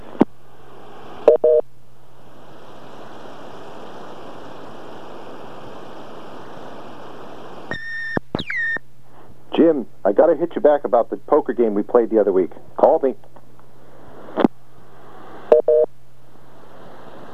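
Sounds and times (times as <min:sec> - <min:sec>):
steady hissing phone-line hum: 0:00.0 - 0:17.3
Phone-Mate answering machine beep tones on a PBX call: 0:01.3 - 0:01.6, 0:15.5 - 0:15.9
speech: 0:09.7 - 0:13.2.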